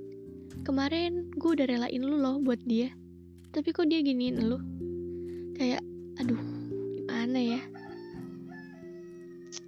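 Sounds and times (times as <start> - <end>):
speech: 0.7 - 4.7, 5.6 - 6.5, 7.3 - 7.8
rooster crowing: 7.7 - 9.6.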